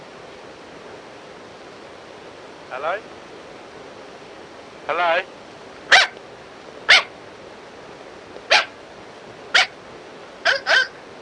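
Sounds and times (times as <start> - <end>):
speech: 2.7 - 3.3, 4.8 - 5.4
dog barking while being chased: 5.9 - 6.2, 6.9 - 7.1, 8.5 - 8.8, 9.5 - 9.8, 10.4 - 11.0.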